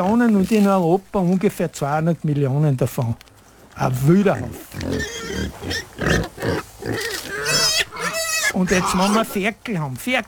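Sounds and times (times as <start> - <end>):
speech: 0.0 - 7.6, 8.6 - 10.2
farmyard noise: 0.0 - 10.2
pigs grunting and snorting: 3.8 - 9.5.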